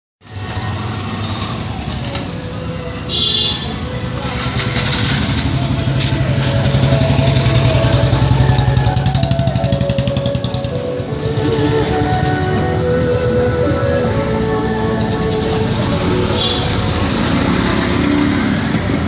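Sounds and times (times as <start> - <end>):
street noise: 0.2 - 19.0
relaxing music: 1.6 - 19.0.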